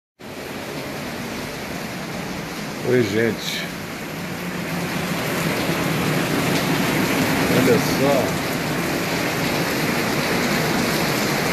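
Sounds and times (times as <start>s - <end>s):
heavy rain downpour: 0.2s - 11.5s
speech: 2.8s - 3.7s, 7.6s - 8.5s.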